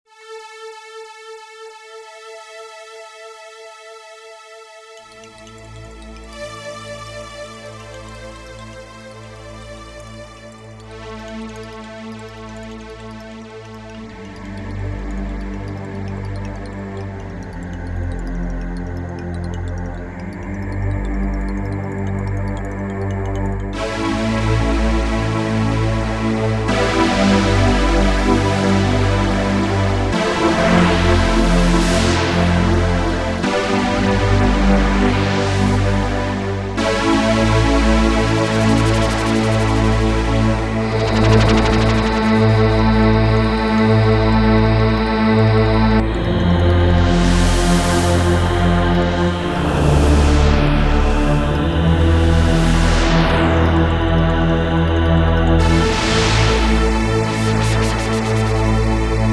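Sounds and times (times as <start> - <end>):
new age sounds from Yamaha TX16W sampler: 0.1 - 59.3.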